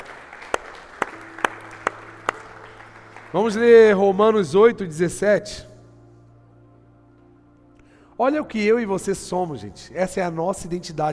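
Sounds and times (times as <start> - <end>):
church audience clapping in unison during worship: 0.0 - 4.1
speech: 3.3 - 5.7, 8.2 - 11.1.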